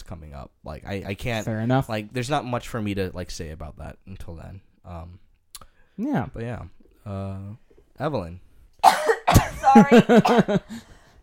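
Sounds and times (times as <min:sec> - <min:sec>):
speech: 0:00.1 - 0:05.2, 0:06.0 - 0:10.9
person coughing in a loud throaty fit: 0:08.8 - 0:10.7.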